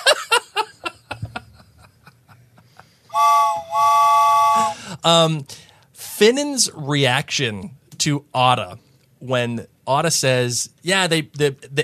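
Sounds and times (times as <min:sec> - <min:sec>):
laughter: 0:00.0 - 0:03.0
person imitating a steam train whistle: 0:03.1 - 0:04.9
speech: 0:05.0 - 0:11.8.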